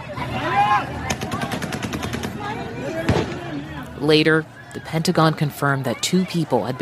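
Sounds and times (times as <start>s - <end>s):
crowd noise on an airport tarmac: 0.0s - 6.8s
voices shouting on an airport tarmac: 0.0s - 6.8s
gunshots on an airport tarmac: 1.0s - 3.4s
speech: 4.0s - 6.8s.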